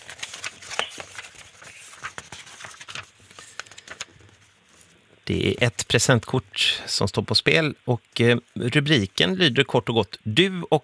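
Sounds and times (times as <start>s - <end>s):
binder pages being leafed through: 0.0s - 5.0s
speech: 5.3s - 10.8s.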